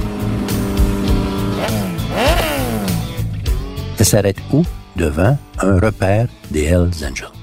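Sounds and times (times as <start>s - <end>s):
Suzuki motorcycle engine revving: 0.0s - 3.6s
speech: 4.0s - 7.4s.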